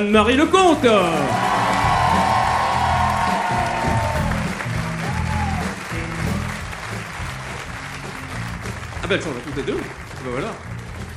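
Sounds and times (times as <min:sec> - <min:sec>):
speech: 0:00.0 - 0:01.4, 0:09.1 - 0:10.7
audience clapping: 0:00.4 - 0:11.1
audience whooping and shouting: 0:01.0 - 0:05.8.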